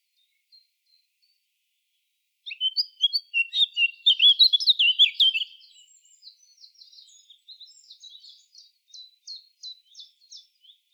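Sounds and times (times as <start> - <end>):
Eurasian blackcap Sylvia atricapilla song with fluting flourish and subsong: 2.4 - 10.9.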